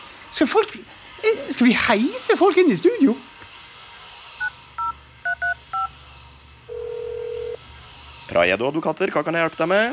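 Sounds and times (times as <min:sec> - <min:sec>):
speech: 0:00.4 - 0:03.4, 0:08.4 - 0:09.9
two-tone telephone keypad beeps: 0:04.8 - 0:05.9.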